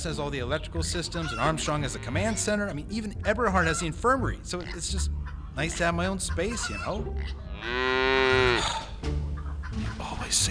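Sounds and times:
speech: 0.0s - 9.2s, 10.3s - 10.5s
cow mooing: 7.4s - 9.0s.

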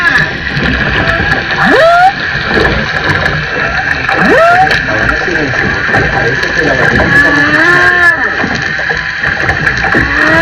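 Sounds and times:
whale calls recorded underwater: 0.0s - 2.8s, 3.5s - 5.2s, 6.9s - 9.0s, 9.8s - 10.4s
constant hiss and low watery rumble underwater: 0.0s - 10.4s.

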